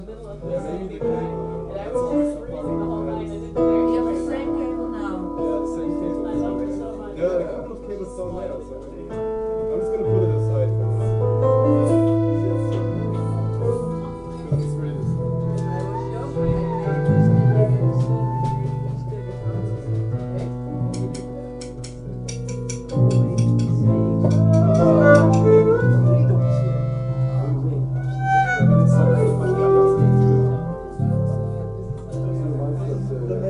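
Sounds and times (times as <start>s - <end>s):
piano: 0.0s - 33.4s
violin: 0.0s - 33.4s.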